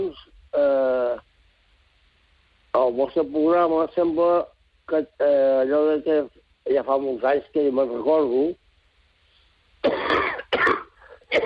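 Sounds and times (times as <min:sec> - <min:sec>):
speech: 0:00.0 - 0:00.8, 0:02.9 - 0:08.6
person coughing harshly: 0:09.8 - 0:11.4.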